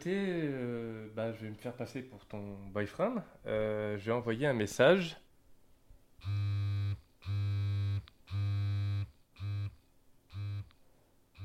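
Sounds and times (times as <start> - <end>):
speech: 0.0 - 5.2
remotely controlled vibrator buzzing SOS in Morse code: 6.2 - 10.7.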